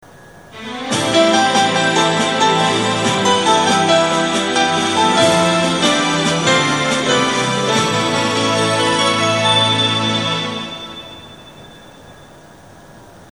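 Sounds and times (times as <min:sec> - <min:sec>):
Kyushu chime: 0:00.0 - 0:13.2.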